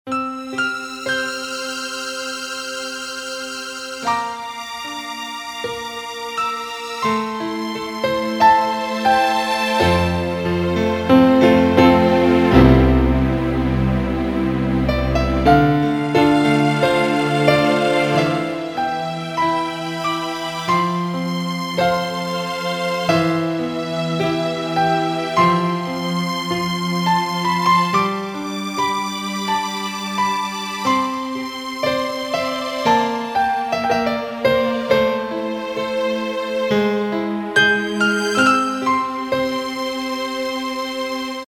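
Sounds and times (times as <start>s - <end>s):
Casio CTK-601 keyboard piano and strings tone: 0.1s - 41.4s.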